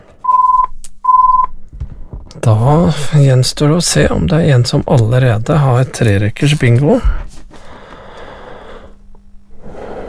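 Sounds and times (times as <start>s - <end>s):
telephone ringing with electronic tones: 0.2s - 1.5s
speech: 2.4s - 7.2s.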